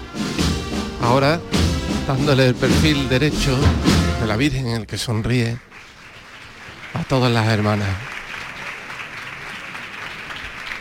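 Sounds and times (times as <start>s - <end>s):
speech: 1.0s - 5.7s, 7.0s - 8.2s
crowd applauding: 5.3s - 10.7s.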